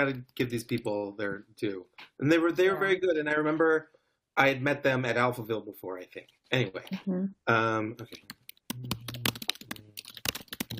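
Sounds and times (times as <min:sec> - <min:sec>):
speech: 0:00.0 - 0:09.0
furious typing on a computer keyboard: 0:08.2 - 0:10.7.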